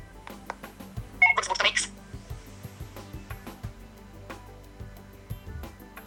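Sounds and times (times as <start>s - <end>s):
short bright phone notification tone: 1.2s - 1.9s.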